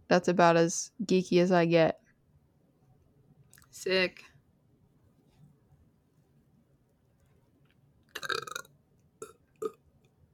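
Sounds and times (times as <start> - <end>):
speech: 0.1 - 2.0, 3.8 - 4.3
loud rough burp after eating chili: 8.2 - 9.8.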